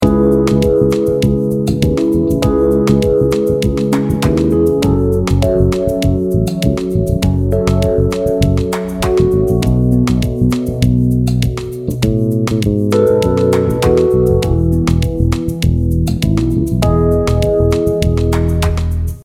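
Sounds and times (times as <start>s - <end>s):
bass playing vi ii V I chord progression in E major: 0.0s - 19.2s.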